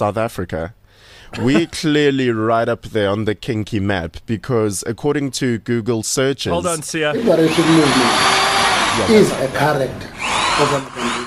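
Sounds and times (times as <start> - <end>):
speech: 0.0 - 11.1
indistinct voices murmuring: 6.5 - 7.8
power drill whining: 7.2 - 11.2.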